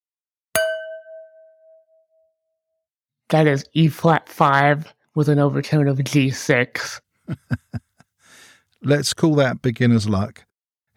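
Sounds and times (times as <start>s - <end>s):
wine glass struck and ringing at E flat 5 with G6 overtone: 0.6s - 2.4s
speech: 3.3s - 7.9s, 8.8s - 10.5s
laughter: 7.3s - 8.1s.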